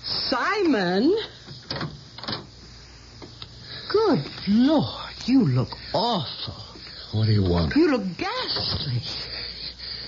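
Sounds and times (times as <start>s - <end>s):
quiet hum: 0.0s - 10.0s
speech: 0.3s - 1.3s, 4.1s - 9.3s
mechanical clunks and rattles: 1.6s - 2.5s.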